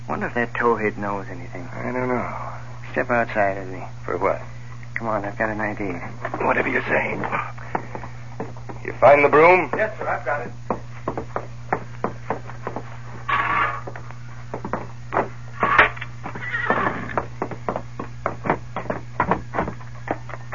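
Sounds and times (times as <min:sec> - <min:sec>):
low constant hum: 0:00.0 - 0:20.5
speech: 0:00.1 - 0:07.6, 0:08.8 - 0:10.7
clopping hoofbeats: 0:07.3 - 0:20.5
horse neighing: 0:13.3 - 0:13.9, 0:15.6 - 0:17.2.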